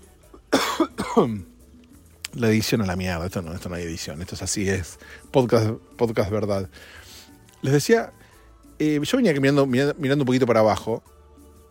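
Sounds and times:
person coughing: 0.4 - 1.5
speech: 1.2 - 1.5, 2.3 - 8.2, 8.8 - 11.2.

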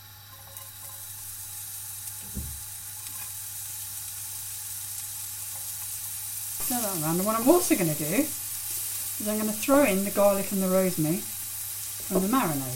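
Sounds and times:
chopped shallot sizzling in a pan on medium heat: 0.0 - 12.7
soft knock: 2.2 - 2.6
speech: 6.7 - 8.4, 9.2 - 11.3, 12.1 - 12.7.

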